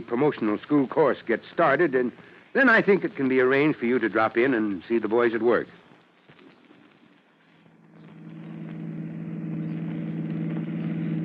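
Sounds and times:
speech: 0.0s - 5.8s
car engine humming: 7.8s - 11.2s.

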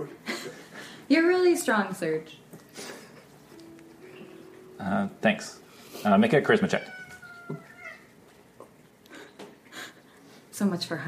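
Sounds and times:
speech: 1.1s - 2.4s, 4.8s - 7.6s, 10.6s - 11.0s
person imitating a cat meowing: 6.7s - 8.0s.

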